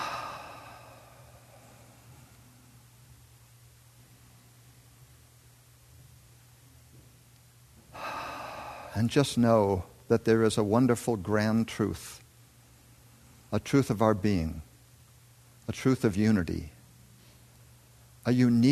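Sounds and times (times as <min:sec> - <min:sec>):
slow deep breaths during a seated guided relaxation: 0:00.0 - 0:02.6, 0:07.9 - 0:09.9
steady low hum: 0:00.0 - 0:18.7
speech: 0:09.0 - 0:12.2, 0:13.5 - 0:14.7, 0:15.7 - 0:16.8, 0:18.2 - 0:18.7.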